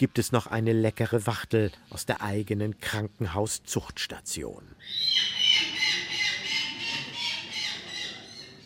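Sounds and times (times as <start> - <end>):
speech: 0.0 - 5.7
falcon giving harsh scratchy calls: 4.8 - 8.4.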